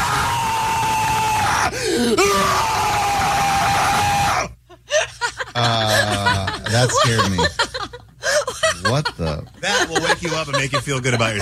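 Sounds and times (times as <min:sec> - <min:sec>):
man's primal scream: 0:00.0 - 0:04.6
man's short breathy gasps: 0:01.7 - 0:02.2
laughter: 0:04.7 - 0:11.4
speech: 0:06.8 - 0:07.6, 0:09.9 - 0:11.4.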